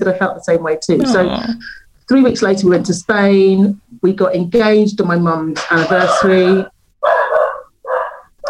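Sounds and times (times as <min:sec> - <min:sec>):
speech: 0:00.0 - 0:07.2
dog barking loudly: 0:07.0 - 0:08.4.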